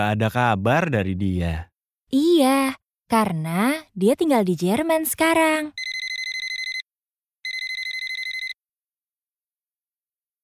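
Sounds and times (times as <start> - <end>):
speech: 0.0 - 5.8
telephone ringing with rapid electronic trilling: 5.8 - 8.6.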